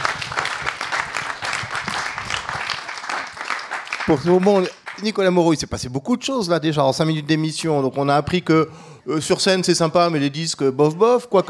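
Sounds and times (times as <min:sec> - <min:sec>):
audience applause: 0:00.0 - 0:05.1
speech: 0:04.1 - 0:11.4.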